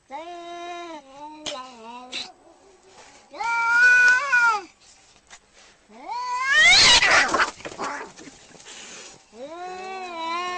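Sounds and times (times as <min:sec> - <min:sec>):
angry domestic cat yowling: 0:03.3 - 0:04.7, 0:06.1 - 0:08.2.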